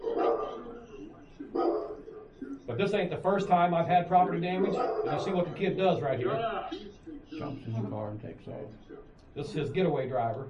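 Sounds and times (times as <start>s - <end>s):
dogs barking: 0.0s - 2.6s, 4.6s - 5.6s
speech: 2.8s - 10.4s.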